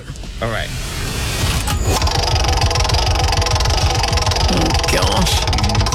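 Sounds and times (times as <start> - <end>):
speech: 0.4 - 0.9, 4.5 - 5.9
prize wheel spinning with pointer ticking past pegs: 1.6 - 5.9.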